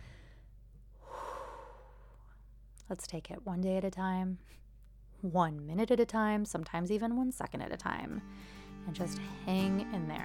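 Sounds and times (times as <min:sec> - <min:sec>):
deep breath: 0:00.0 - 0:02.5, 0:08.3 - 0:08.8
speech: 0:02.9 - 0:04.6, 0:05.2 - 0:10.2.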